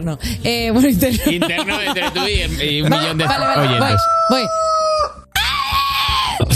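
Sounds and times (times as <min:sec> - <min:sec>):
speech: 0:00.0 - 0:05.2
laughter: 0:01.2 - 0:03.9
rooster crowing with a strained cracking voice: 0:03.0 - 0:05.6.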